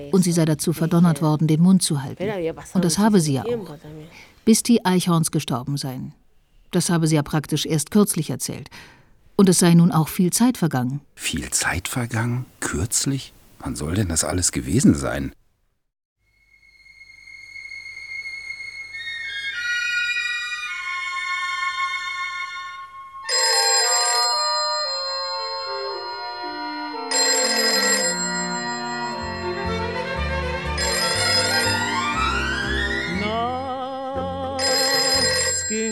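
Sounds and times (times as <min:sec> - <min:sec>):
speech: 0:00.0 - 0:15.4
music with sliding tones: 0:16.3 - 0:23.3, 0:29.0 - 0:33.5
telephone bell ringing: 0:23.3 - 0:33.1, 0:34.6 - 0:35.8.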